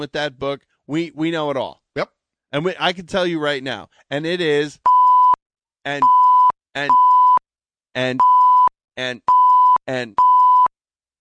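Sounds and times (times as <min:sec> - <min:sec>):
speech: 0:00.0 - 0:04.9, 0:05.8 - 0:06.2, 0:06.8 - 0:07.1, 0:08.0 - 0:08.3, 0:09.0 - 0:10.2
electronic security system beeps: 0:06.0 - 0:07.4, 0:08.2 - 0:08.7, 0:09.3 - 0:10.7.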